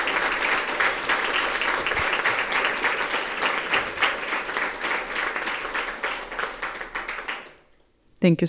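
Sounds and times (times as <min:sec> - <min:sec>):
sustained applause from a sizable audience: 0:00.0 - 0:07.7.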